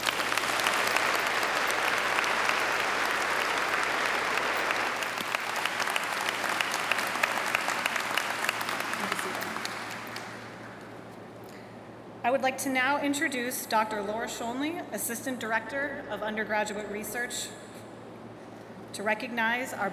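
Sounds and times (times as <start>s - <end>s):
audience clapping at a university graduation celebration: 0.0s - 10.9s
speech: 12.3s - 17.6s, 19.0s - 19.9s.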